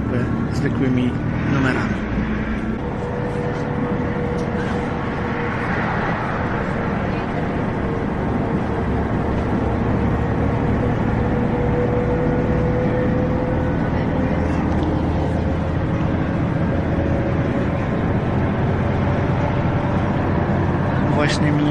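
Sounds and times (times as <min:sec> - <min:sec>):
city express bus engine drone: 0:00.0 - 0:21.6
road rumble inside a moving city express bus: 0:00.0 - 0:21.6
speech: 0:00.6 - 0:02.3.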